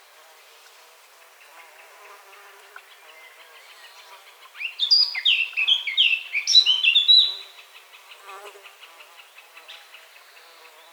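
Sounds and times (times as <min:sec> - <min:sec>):
Eurasian blackcap Sylvia atricapilla song: 0:04.6 - 0:07.4.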